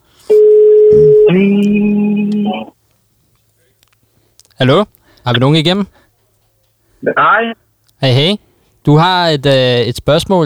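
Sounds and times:
steady electronic telephone dialing and ringing tones: 0.3s - 2.7s, 7.0s - 7.6s
speech: 4.6s - 6.0s, 7.0s - 10.4s.

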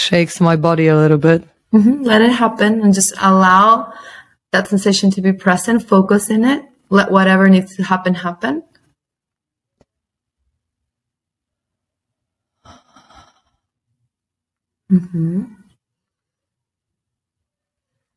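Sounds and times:
speech: 0.1s - 8.7s, 14.9s - 15.6s
drawn-out voiced sighing yawn: 12.7s - 13.6s
person murmuring an acknowledgment: 14.9s - 15.6s.

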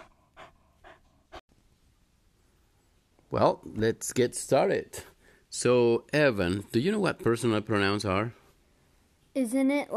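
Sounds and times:
dog panting: 0.0s - 1.4s
speech: 3.3s - 8.4s, 9.4s - 9.9s.

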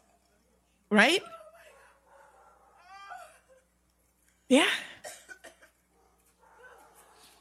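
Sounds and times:
speech: 0.9s - 1.4s, 4.5s - 4.8s
faint dogs barking: 1.6s - 3.0s, 5.9s - 7.4s.

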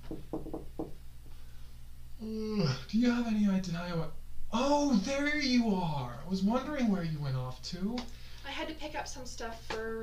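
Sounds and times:
knocking on a wooden door: 0.0s - 1.0s
low hum: 0.0s - 10.0s
speech: 2.2s - 10.0s.

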